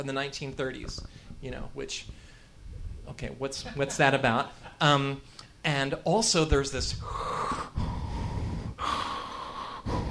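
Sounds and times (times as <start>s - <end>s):
speech: 0.0s - 2.2s, 3.1s - 7.6s
loud raspy heavy breathing: 6.9s - 10.0s.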